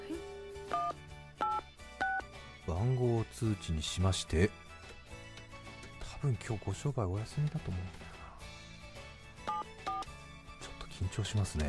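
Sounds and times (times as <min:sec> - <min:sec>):
mobile phone keypad dialing tones: 0:00.7 - 0:02.3, 0:09.4 - 0:10.1
speech: 0:02.7 - 0:04.6, 0:06.2 - 0:08.1, 0:11.0 - 0:11.6.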